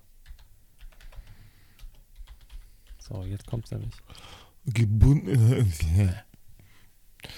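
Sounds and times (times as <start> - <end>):
keyboard typing a search query: 0.2 - 3.6
speech: 3.1 - 6.3.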